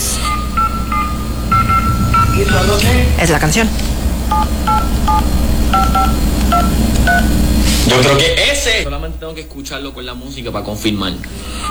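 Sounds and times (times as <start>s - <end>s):
telephone keypad DTMF tones dialing a number: 0.0s - 3.0s, 4.3s - 7.4s, 11.4s - 11.6s
steady low noise: 0.0s - 11.6s
speech: 3.2s - 11.6s.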